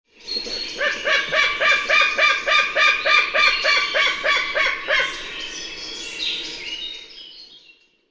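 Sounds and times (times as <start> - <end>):
white-tailed eagle Haliaeetus albicilla albicilla calling: 0.8 - 5.4.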